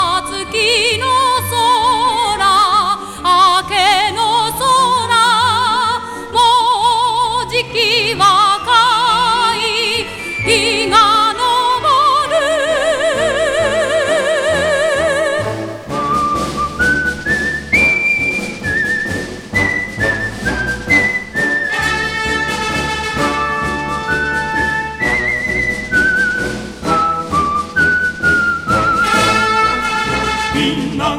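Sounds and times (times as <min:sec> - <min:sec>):
instrumental accompaniment: 0:00.0 - 0:31.1
person whistling a bright lilting song melody: 0:08.4 - 0:12.4, 0:13.0 - 0:31.0.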